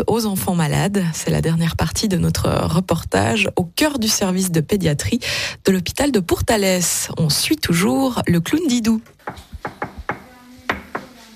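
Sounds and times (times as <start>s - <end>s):
speech: 0.0s - 9.8s
knuckles knocking on a hospital room door in a children's ward: 9.2s - 11.2s.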